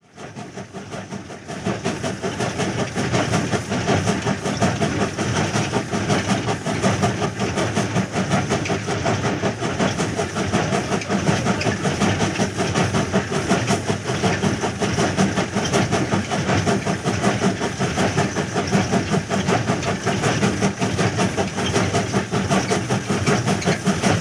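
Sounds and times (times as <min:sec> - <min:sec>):
period steam train running constantly: 0:00.0 - 0:24.1.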